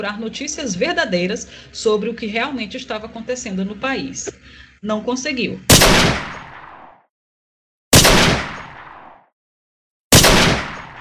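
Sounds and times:
speech: 0.0 - 6.2
loud sharp gunshots with decay: 5.7 - 7.0, 7.9 - 9.3, 10.1 - 10.9.

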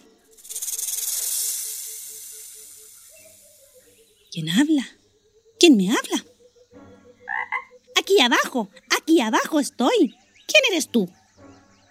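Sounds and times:
snake hissing: 0.0 - 4.8
faint rhythmic pulsing: 0.0 - 11.8
speech: 4.4 - 5.0, 5.6 - 6.3, 8.1 - 11.2.

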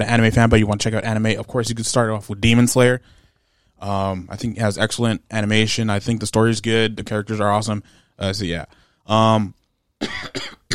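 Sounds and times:
speech: 0.0 - 3.2, 3.8 - 10.5
phlegmy coughs: 10.0 - 10.7.

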